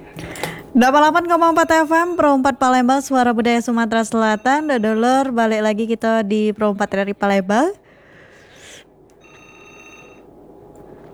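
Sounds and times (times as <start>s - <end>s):
telephone ringing in a brief electronic trill: 0.0s - 7.2s, 9.1s - 10.7s
steady hum: 0.0s - 11.1s
speech: 0.8s - 7.8s.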